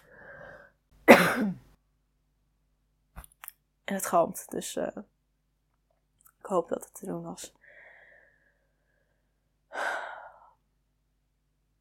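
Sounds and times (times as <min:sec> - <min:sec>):
soft breathy lead-in: 0:00.0 - 0:00.8, 0:07.6 - 0:10.6
single cough into a microphone: 0:01.1 - 0:01.6
speech: 0:01.4 - 0:01.6, 0:03.9 - 0:05.1, 0:06.5 - 0:07.6.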